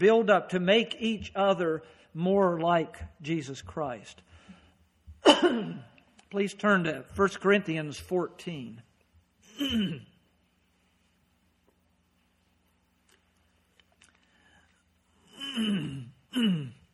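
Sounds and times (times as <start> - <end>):
speech: 0.0 - 4.3, 5.2 - 8.9, 9.6 - 10.1, 15.6 - 16.8
person coughing: 5.2 - 5.9, 9.5 - 10.2, 15.3 - 16.9.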